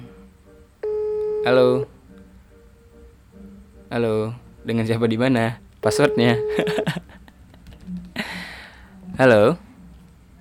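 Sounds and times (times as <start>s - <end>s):
telephone ringback tone while calling: 0.8s - 1.9s, 5.8s - 6.9s
speech: 1.4s - 1.9s, 3.9s - 7.0s, 9.2s - 9.6s
laughter: 6.5s - 7.8s.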